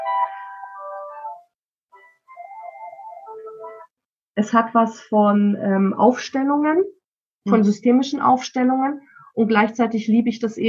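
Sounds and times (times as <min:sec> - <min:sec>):
bright melodic electronic phone ringtone: 0:00.0 - 0:04.0
speech: 0:04.4 - 0:10.6.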